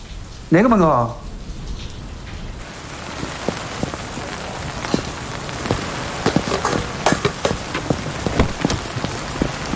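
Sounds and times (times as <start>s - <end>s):
steady rain pouring: 0.0s - 9.7s
speech: 0.5s - 1.2s
rain drops pattering on a hard surface: 3.0s - 9.7s.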